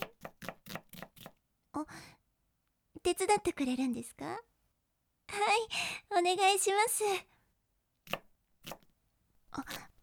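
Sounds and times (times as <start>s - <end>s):
kitchen knife chopping food on a board: 0.0s - 1.4s, 8.0s - 8.8s
speech: 3.1s - 4.5s, 5.4s - 7.3s.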